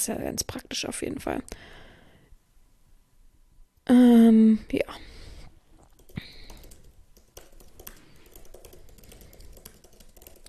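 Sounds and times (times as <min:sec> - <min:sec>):
speech: 0:00.0 - 0:01.8, 0:03.9 - 0:05.1
message being typed on a computer keyboard: 0:05.9 - 0:10.4.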